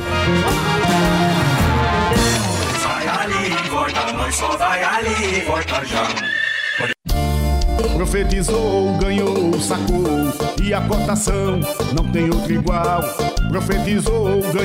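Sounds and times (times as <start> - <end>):
loud busy music with singing voices: 0.0 - 6.3, 7.1 - 14.6
speech: 4.2 - 6.9, 8.0 - 14.6
horse whinnying on a farm: 6.0 - 7.0.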